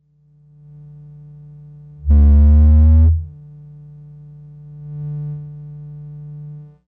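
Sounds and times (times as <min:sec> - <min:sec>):
overdriven bass: 0:02.0 - 0:03.4.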